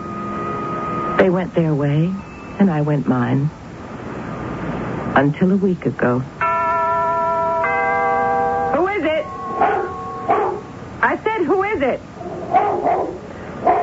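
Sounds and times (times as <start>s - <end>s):
steady sustained tones: 0.0s - 2.7s, 6.4s - 12.2s
speech: 1.2s - 3.6s, 5.2s - 6.4s, 8.7s - 9.9s, 11.4s - 13.2s
dog giving short high yelping barks: 9.6s - 10.8s, 12.2s - 13.8s.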